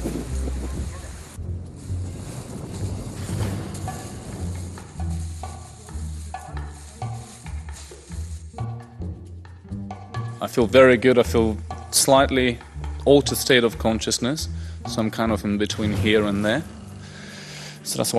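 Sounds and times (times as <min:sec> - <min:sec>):
strong wind outdoors buffeting the microphone: 0:00.0 - 0:05.1
speech: 0:10.4 - 0:16.8, 0:17.9 - 0:18.1.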